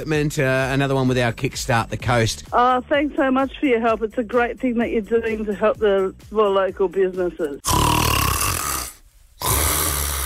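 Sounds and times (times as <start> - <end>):
speech: 0.0 - 7.8
man snoring loudly and harshly: 7.6 - 10.2.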